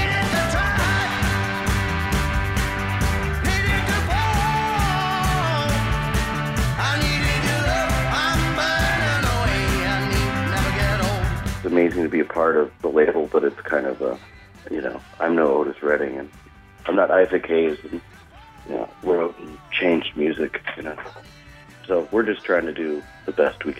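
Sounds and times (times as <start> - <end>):
loud full-band soul song: 0.0 - 23.7
speech: 11.8 - 18.1, 18.7 - 23.7.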